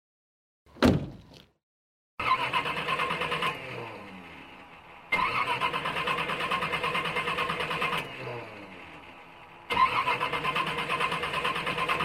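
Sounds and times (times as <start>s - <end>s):
thump: 0.8s - 1.5s
car engine cranking and starting: 2.2s - 12.0s.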